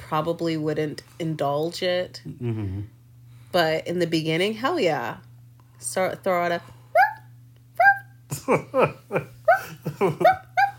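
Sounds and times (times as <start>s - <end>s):
faint steady hum: 0.0s - 10.7s
speech: 0.1s - 6.8s, 8.4s - 10.5s
person imitating yappy dog barks: 7.0s - 7.2s, 7.8s - 8.1s, 9.5s - 10.7s
laughter: 8.3s - 10.7s.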